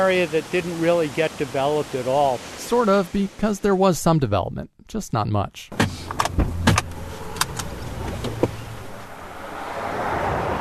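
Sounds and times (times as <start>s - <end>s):
speech: 0.0s - 6.5s
thumps and clicks of people getting into a car, doors and seats being settled: 5.7s - 9.0s.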